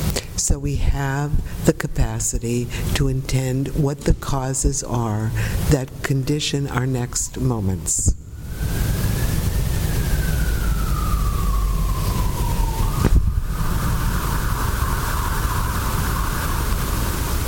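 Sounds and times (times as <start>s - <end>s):
loud rumble of traffic noise: 0.0s - 17.4s
speech: 0.4s - 8.8s
emergency vehicle siren wailing: 8.2s - 17.4s.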